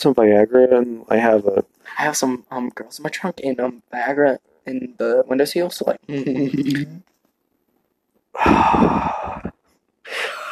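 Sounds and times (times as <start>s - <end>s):
speech: 0.0s - 7.1s, 8.4s - 9.4s
heavy breathy exhale against the microphone: 8.4s - 9.5s.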